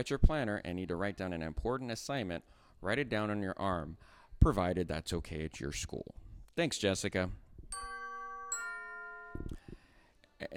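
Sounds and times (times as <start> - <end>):
speech: 0.0 - 7.9, 10.4 - 10.5
school dismissal bell ringing: 7.8 - 9.6.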